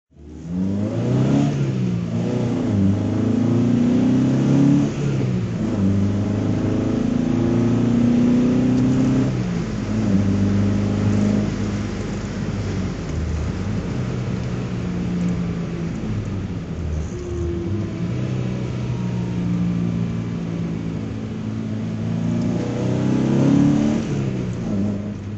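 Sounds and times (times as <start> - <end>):
tuned BMW 2002 ti driving: 0.1 - 25.3.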